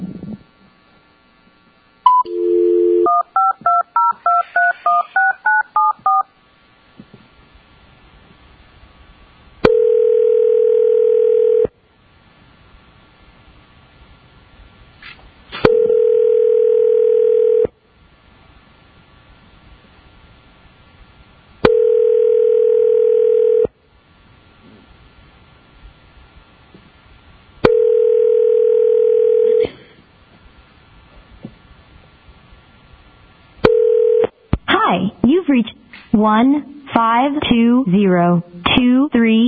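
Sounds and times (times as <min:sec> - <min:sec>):
telephone dial tone: 0:02.1 - 0:06.2, 0:09.7 - 0:11.7, 0:15.7 - 0:17.7, 0:21.7 - 0:23.7, 0:27.7 - 0:29.6, 0:33.7 - 0:34.3
speech: 0:35.5 - 0:39.4.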